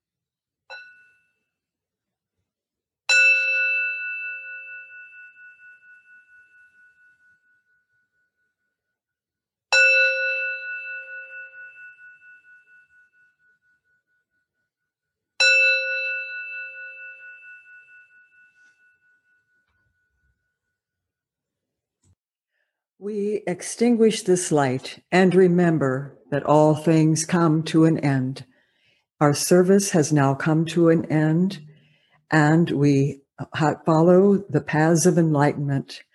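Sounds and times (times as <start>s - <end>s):
resonant closing bell rung at a Buddhist service: 0.7s - 1.7s, 3.1s - 9.0s, 9.7s - 14.8s, 15.4s - 20.9s
speech: 23.0s - 28.5s, 29.2s - 31.7s, 32.3s - 36.1s.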